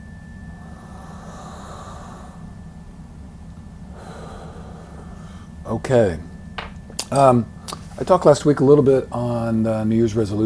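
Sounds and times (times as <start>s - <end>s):
deep breath in and out during a guided breathing exercise: 0.6s - 2.7s, 3.8s - 5.6s
speech: 5.7s - 6.3s, 7.1s - 10.4s.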